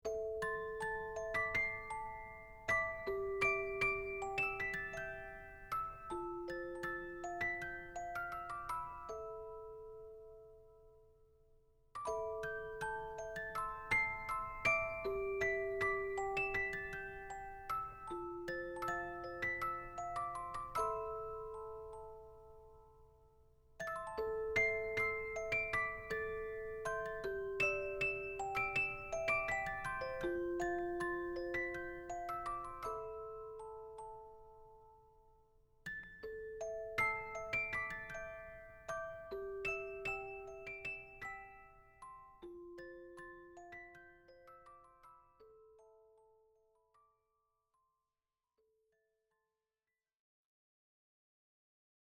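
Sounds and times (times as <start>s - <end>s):
simple music box melody: 0.0s - 11.1s, 12.0s - 47.0s.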